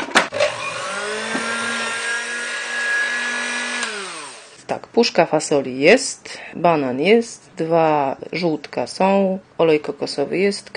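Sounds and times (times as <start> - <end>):
electric kitchen blender whirring: 0.1 - 4.6
speech: 4.7 - 10.7.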